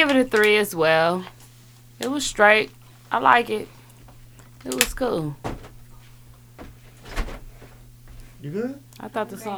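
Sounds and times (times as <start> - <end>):
speech: 0.0 - 1.4, 2.0 - 3.8, 4.6 - 5.5, 8.4 - 9.5
rustling: 0.0 - 8.9
chair creaking: 0.0 - 9.0
person dropping heavily into a chair: 4.0 - 8.4.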